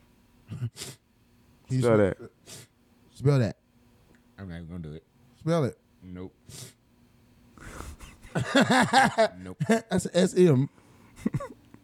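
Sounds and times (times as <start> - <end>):
person sniffing: 0.5 - 1.0, 2.4 - 2.8, 6.5 - 6.8, 7.6 - 8.4
speech: 1.7 - 2.6, 3.2 - 3.6, 4.4 - 6.7, 8.4 - 11.6
laughter: 8.0 - 10.0.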